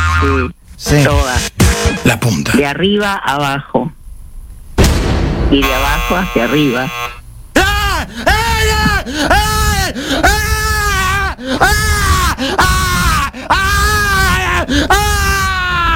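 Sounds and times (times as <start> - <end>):
speech: 0.2 - 4.0, 5.5 - 7.2, 8.0 - 9.6
man gasping: 7.6 - 10.3, 11.4 - 12.6, 14.5 - 14.9
man screaming and groaning: 7.6 - 15.9.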